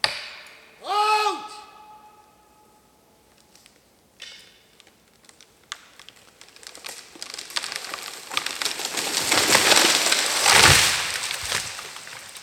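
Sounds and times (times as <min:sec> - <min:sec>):
felled tree crackling and splintering: 0:03.3 - 0:12.4
felled tree crashing to the ground: 0:04.4 - 0:12.4.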